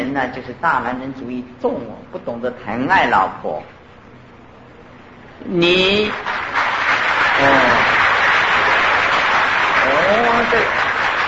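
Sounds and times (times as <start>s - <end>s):
speech: 0.2s - 3.8s, 5.4s - 6.4s, 7.4s - 7.7s, 10.0s - 10.9s
audience applause: 6.1s - 11.2s.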